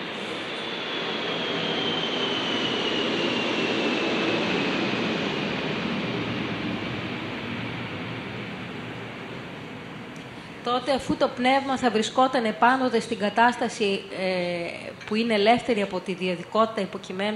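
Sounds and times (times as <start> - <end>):
faint high whine sliding downward: 0.0 - 10.3
airplane passing overhead: 0.0 - 10.7
speech: 10.7 - 17.3.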